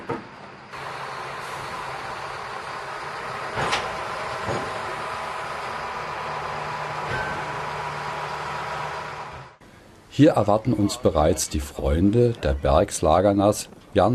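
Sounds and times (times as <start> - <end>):
shunting tractor engine droning moving railway cars in a port: 0.0 - 10.0
sharp metallic clanks and knocks of railway cars: 7.0 - 7.6
speech: 10.2 - 14.1.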